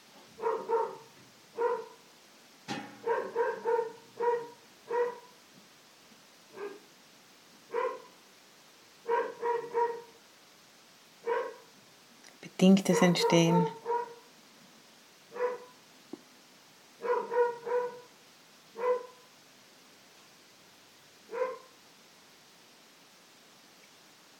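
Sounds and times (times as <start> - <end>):
dog barking: 0.4 - 2.0, 3.0 - 5.4, 6.5 - 6.8, 7.7 - 8.2, 9.0 - 10.2, 11.2 - 11.7, 12.9 - 14.3, 15.3 - 15.8, 17.0 - 18.1, 18.8 - 19.3, 21.3 - 21.8
speech: 12.6 - 13.8.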